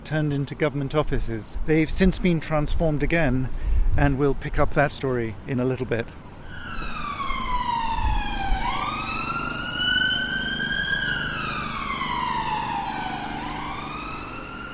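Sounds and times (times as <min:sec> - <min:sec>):
busy street traffic rumbling on Whitehall: 0:00.0 - 0:14.7
speech: 0:00.1 - 0:06.2
emergency siren wailing: 0:06.4 - 0:14.7.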